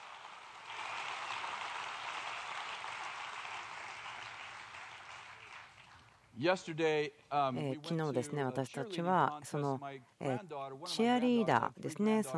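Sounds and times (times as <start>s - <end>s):
crowd applauding in praise of the Lord: 0.0s - 6.3s
speech: 6.4s - 12.3s.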